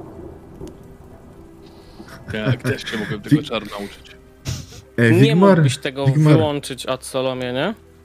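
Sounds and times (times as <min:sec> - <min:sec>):
low rumble of thunder: 0:00.0 - 0:01.4
steady rain: 0:00.0 - 0:08.0
laughter: 0:02.1 - 0:06.5
speech: 0:02.3 - 0:04.2, 0:05.0 - 0:07.8.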